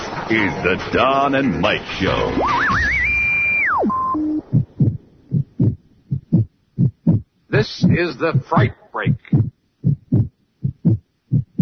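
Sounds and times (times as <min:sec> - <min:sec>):
speech: 0:00.3 - 0:03.0, 0:07.7 - 0:09.2
heartbeat of a frightened heart: 0:03.8 - 0:11.6.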